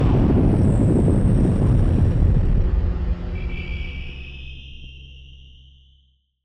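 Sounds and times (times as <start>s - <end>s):
spacecraft landing: 0.0s - 4.2s.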